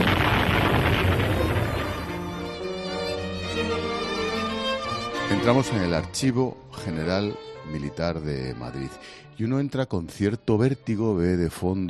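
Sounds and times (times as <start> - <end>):
heavy cannon shot fired at a castle as a signal: 0.0 - 2.4
music: 1.2 - 11.8
speech: 5.4 - 11.8.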